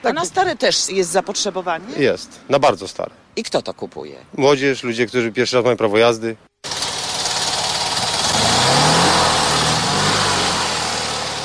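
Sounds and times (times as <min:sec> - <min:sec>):
speech: 0:00.0 - 0:06.5
Fiat 126P car engine idling after standing in traffic jams: 0:06.6 - 0:11.4.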